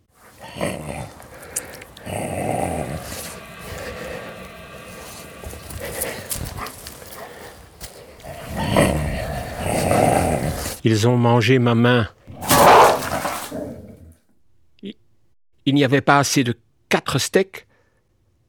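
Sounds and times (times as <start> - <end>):
dogs growling: 0.0 - 10.8, 12.3 - 14.2
speech: 10.8 - 12.2, 15.7 - 17.7.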